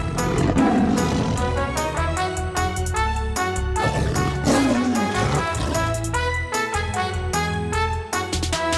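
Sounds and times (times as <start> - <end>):
tigers roaring: 0.0 - 2.0, 3.8 - 6.2
music track with a steady beat: 0.0 - 8.7.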